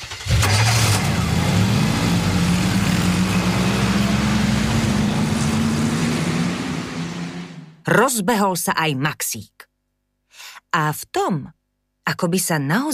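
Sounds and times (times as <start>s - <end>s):
cars accelerating away from a traffic light: 0.1s - 7.8s
speech: 7.9s - 9.6s, 10.7s - 12.9s.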